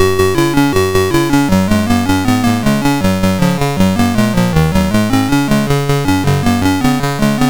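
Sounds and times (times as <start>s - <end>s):
chiptune synth music on a MOS6581R4 chip: 0.0s - 7.4s.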